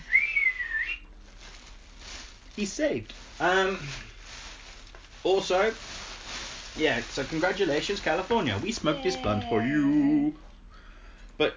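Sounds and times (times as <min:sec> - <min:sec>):
whistle-like tone from a device without attachment: 0:00.0 - 0:01.1
speech: 0:02.6 - 0:04.1, 0:05.2 - 0:06.0, 0:06.8 - 0:10.5, 0:11.4 - 0:11.5.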